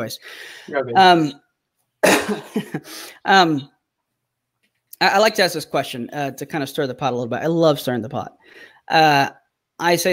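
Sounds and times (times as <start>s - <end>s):
speech: 0.0s - 1.4s, 2.0s - 3.7s, 5.0s - 10.1s
man clearing his throat: 2.0s - 2.8s.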